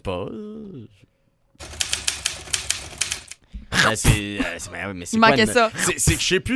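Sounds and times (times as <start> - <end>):
speech: 0.0 - 1.8, 3.8 - 6.5
typewriter keys clacking: 1.6 - 3.4.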